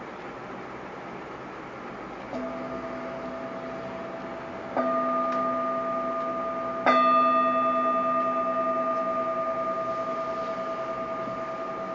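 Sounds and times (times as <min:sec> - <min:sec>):
meditation bell ringing with a clear shimmering tone: 0:02.4 - 0:11.9.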